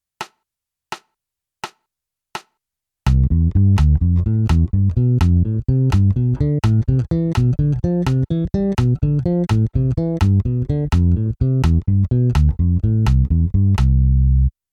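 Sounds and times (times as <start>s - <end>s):
major scale triads: 3.1s - 14.5s.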